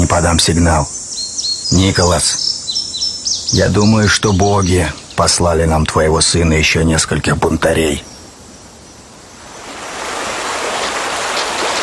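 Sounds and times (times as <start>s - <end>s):
speech: 0.1s - 1.0s, 1.7s - 2.4s, 3.5s - 8.1s
shallow river water rushing and burbling: 9.4s - 11.8s.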